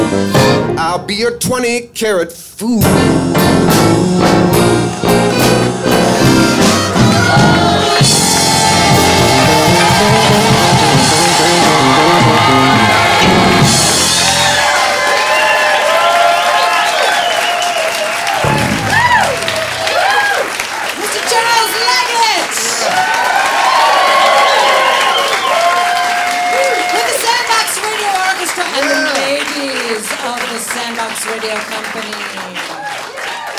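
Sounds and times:
speech: 1.0s - 5.9s
excited voices in the crowd: 4.8s - 29.5s
live audience clapping at a show recording: 4.9s - 33.5s
live audience whooping and shouting: 6.6s - 27.6s, 32.8s - 33.5s.

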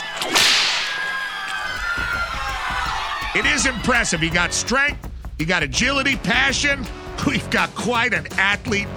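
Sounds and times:
whip crack: 0.0s - 1.9s
laughter: 1.9s - 5.0s
speech: 3.4s - 8.9s.

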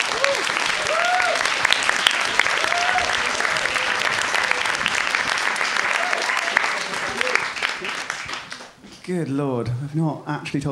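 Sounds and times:
audience voices and cheers: 0.0s - 8.6s
audience applause: 0.0s - 8.8s
speech: 9.1s - 10.7s.

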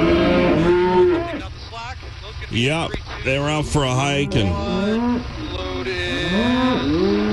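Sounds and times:
cow mooing loudly: 0.0s - 1.4s, 4.1s - 7.3s
speech: 2.6s - 7.1s.

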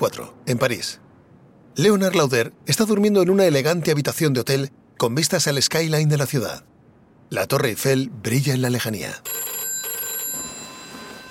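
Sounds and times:
speech: 0.0s - 1.0s, 1.8s - 6.7s, 7.3s - 9.5s
telephone bell ringing: 9.2s - 11.2s.

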